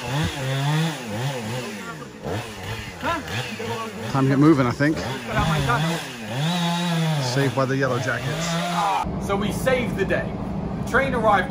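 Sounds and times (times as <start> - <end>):
chainsaw revving in wavering bursts: 0.0 - 9.1
speech: 4.2 - 6.5, 7.4 - 11.4.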